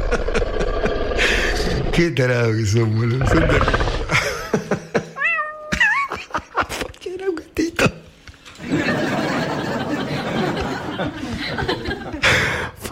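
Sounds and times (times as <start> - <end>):
people laughing: 0.0 - 1.9, 3.3 - 6.8, 8.6 - 12.7
speech: 0.1 - 0.4, 2.0 - 3.8
kitten meowing: 5.2 - 5.7.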